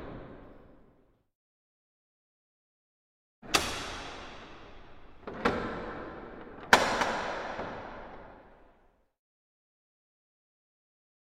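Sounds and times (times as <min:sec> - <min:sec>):
various reverberant bolts: 0:03.5 - 0:08.6.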